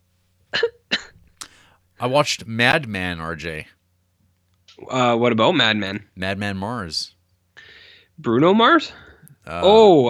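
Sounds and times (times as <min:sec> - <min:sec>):
person coughing: 0:00.5 - 0:01.2
speech: 0:02.0 - 0:03.8, 0:04.8 - 0:07.2, 0:08.2 - 0:10.0.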